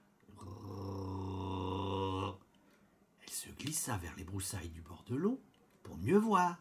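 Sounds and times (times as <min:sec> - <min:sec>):
strange low growling grunt: 0:00.3 - 0:02.4
speech: 0:03.7 - 0:06.5.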